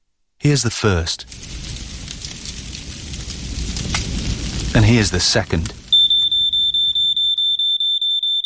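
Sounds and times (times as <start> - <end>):
speech: 0.4 - 1.7, 4.8 - 5.8
spreading household fire crackling and popping: 0.4 - 8.1
shrill household smoke alarm beeping: 5.9 - 8.4.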